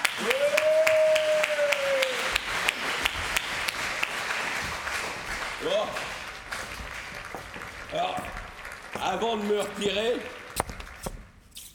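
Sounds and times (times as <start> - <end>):
audience applauding with dense clapping: 0.0 - 11.1
sustained whoop or whistle above the crowd: 0.2 - 2.3
speech: 9.2 - 10.4.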